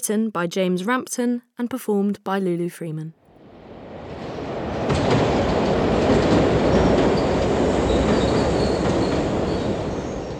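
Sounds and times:
speech: 0.0s - 3.2s
London Underground tube train rumbling in motion: 3.3s - 10.3s
faint high wheel squeals of a tube train: 5.2s - 10.3s.

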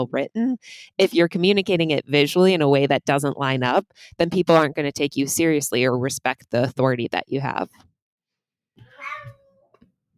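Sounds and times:
speech: 0.0s - 7.9s
cat meowing: 8.8s - 9.8s.

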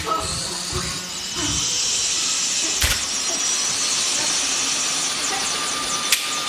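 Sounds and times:
helicopter taking off over countryside: 0.0s - 6.4s
helicopter turbine whine and rushing hiss: 0.0s - 6.4s.

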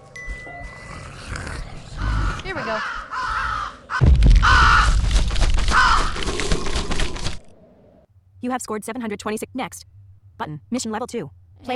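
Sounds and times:
raven cawing in a video game: 2.0s - 7.4s
speech: 2.6s - 3.0s, 8.4s - 11.7s.

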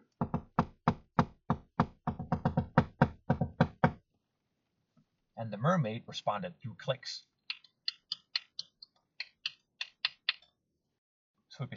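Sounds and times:
knocks rapping Morse code on a window: 0.2s - 4.0s
speech: 5.5s - 7.3s, 11.6s - 11.7s.

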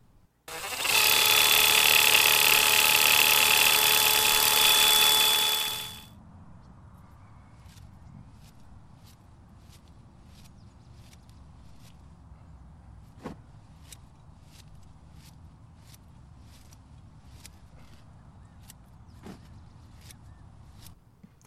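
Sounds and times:
powered quick-cut greens harvester running on a farm: 0.5s - 6.1s.

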